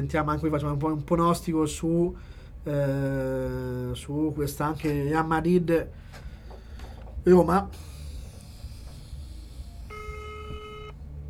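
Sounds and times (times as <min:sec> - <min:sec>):
speech: 0:00.0 - 0:06.2, 0:07.2 - 0:07.9
low noise: 0:00.0 - 0:11.2
telephone ringing tone on a call line: 0:09.9 - 0:11.0.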